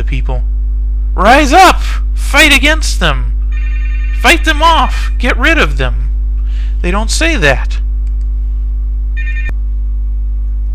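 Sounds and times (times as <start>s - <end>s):
steady low electrical hum: 0.0s - 10.7s
speech: 0.1s - 0.6s, 1.2s - 3.3s, 4.2s - 6.0s, 6.8s - 7.8s
electronic telephone ring: 3.5s - 4.4s, 9.2s - 9.6s
sharp click: 8.0s - 8.3s.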